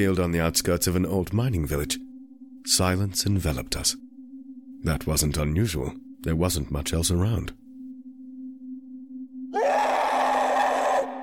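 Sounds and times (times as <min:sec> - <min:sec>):
speech: 0:00.0 - 0:04.1, 0:04.8 - 0:07.6
low hum: 0:00.4 - 0:10.2
blood-curdling piercing scream: 0:09.5 - 0:11.2.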